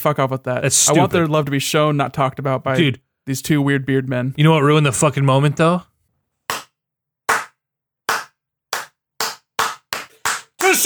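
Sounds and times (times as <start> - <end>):
speech: 0.0 - 5.9
slow hand clapping: 6.5 - 10.8.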